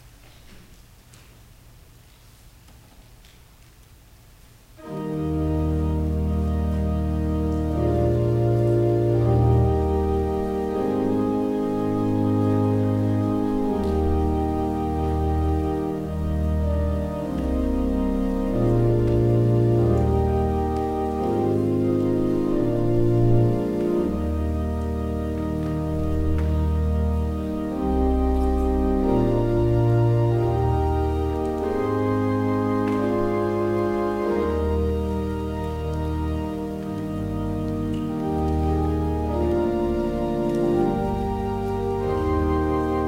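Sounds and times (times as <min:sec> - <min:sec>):
music interlude: 0:04.8 - 0:43.0.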